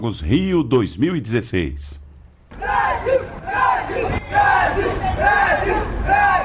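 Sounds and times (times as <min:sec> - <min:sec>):
speech: 0:00.0 - 0:02.0, 0:02.6 - 0:06.4
large sports crowd cheering and chanting: 0:02.5 - 0:06.4.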